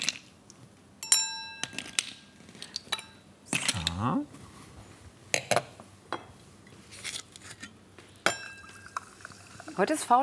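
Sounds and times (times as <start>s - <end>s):
glasses clinking in a toast: 1.0s - 2.2s, 2.8s - 4.0s, 8.2s - 9.5s
speech: 9.8s - 10.2s.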